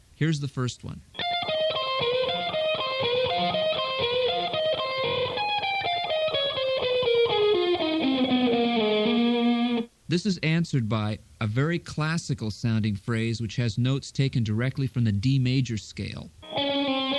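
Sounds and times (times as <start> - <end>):
speech: 0.2 - 1.2, 10.1 - 16.4
distorted electric guitar playing a melodic solo phrase: 1.2 - 9.9, 16.4 - 17.1.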